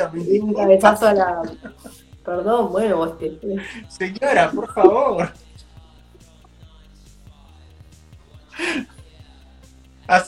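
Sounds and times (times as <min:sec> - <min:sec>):
laughter: 0:00.0 - 0:02.0, 0:03.4 - 0:05.4
speech: 0:00.0 - 0:05.6, 0:08.6 - 0:08.9, 0:10.1 - 0:10.2
person yawning with a low voiced groan: 0:08.5 - 0:08.9.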